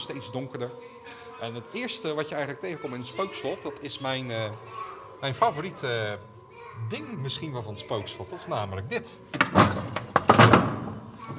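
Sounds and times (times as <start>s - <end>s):
speech: 0.0s - 10.5s
fake door in a haunted castle attraction thumping and bouncing back: 9.4s - 11.1s
iron bells rattling and jingling: 9.4s - 11.3s.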